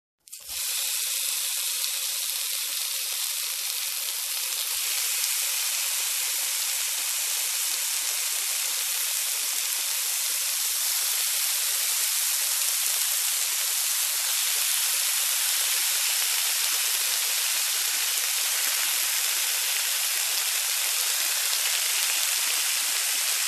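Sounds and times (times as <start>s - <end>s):
food frying: 0.2s - 23.4s.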